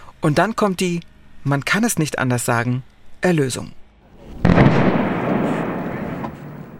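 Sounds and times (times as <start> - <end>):
speech: 0.2 - 3.8
explosion sinking barges to seal dike breach: 4.3 - 6.7.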